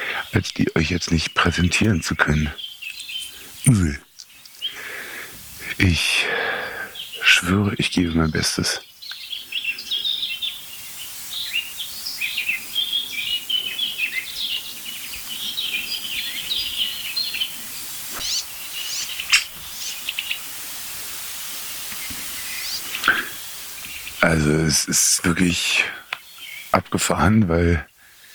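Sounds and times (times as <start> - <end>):
steady hiss: 0.0 - 28.3
young birds giving high-pitched begging calls: 0.0 - 28.3
speech: 0.3 - 2.6, 3.6 - 4.0, 5.8 - 8.9, 24.3 - 26.0, 26.9 - 27.9
sharp clicks: 18.1 - 20.4.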